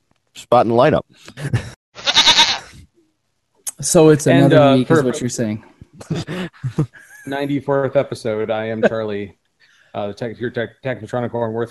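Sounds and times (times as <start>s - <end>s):
speech: 0.5s - 1.8s, 3.8s - 11.6s
laughter: 1.3s - 1.8s, 6.0s - 9.3s
goat bleating: 2.0s - 2.8s.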